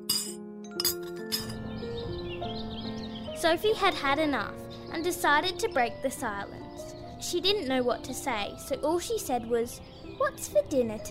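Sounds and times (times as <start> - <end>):
metal spoons clinking against bowls: 0.0 - 1.6
faint bird chirping: 1.0 - 11.0
speech: 3.4 - 6.6, 7.2 - 11.0.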